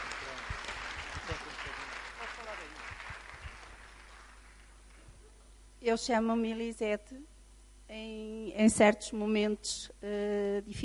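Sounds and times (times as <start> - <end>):
crowd applause: 0.0 - 5.0
speech: 5.9 - 7.3, 7.9 - 10.8.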